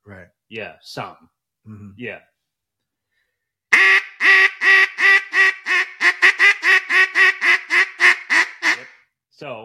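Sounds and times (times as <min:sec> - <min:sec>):
speech: 0:00.1 - 0:02.3, 0:09.4 - 0:09.6
hen duck quacks blown on a duck call: 0:03.7 - 0:09.0.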